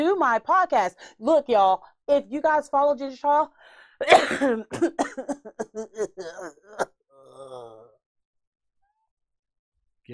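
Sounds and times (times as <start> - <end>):
speech: 0.0 - 7.9
harsh hoarse coughing from a person with a bad cough: 4.0 - 6.9
person groaning: 5.8 - 8.0.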